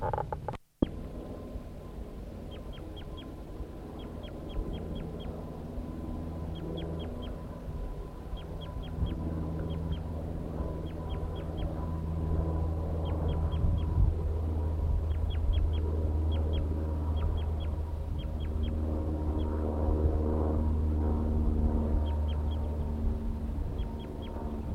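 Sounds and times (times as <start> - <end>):
low hum: 0.0 - 24.7
wild male bird giving flight calls near a female's nest tree: 2.2 - 5.6, 6.4 - 12.1, 12.8 - 14.0, 15.0 - 19.6, 21.8 - 23.1, 23.7 - 24.7.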